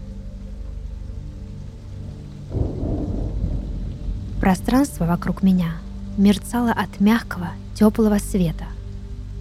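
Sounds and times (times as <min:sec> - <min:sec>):
steady heavy rain hissing: 0:00.0 - 0:09.3
low rumble of thunder: 0:02.5 - 0:07.0
speech: 0:04.4 - 0:08.7.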